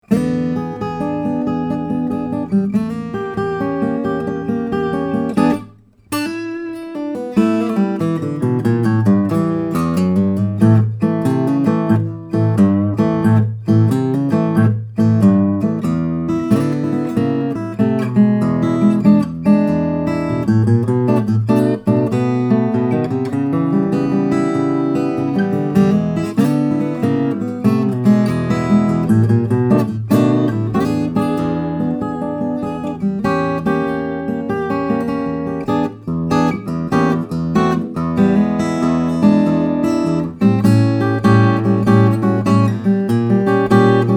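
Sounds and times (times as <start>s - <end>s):
double top steel-string guitar: 0.0s - 44.1s.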